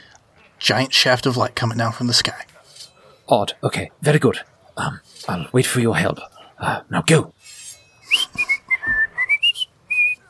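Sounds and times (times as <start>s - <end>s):
speech: 0.6s - 2.5s, 3.3s - 7.6s
person whistling a short lively tune: 8.0s - 10.2s.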